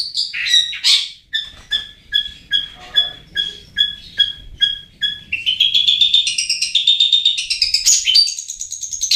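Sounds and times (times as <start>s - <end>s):
Long-tailed shrike song, varied warble of whistled and chattered notes: 0.2s - 8.4s.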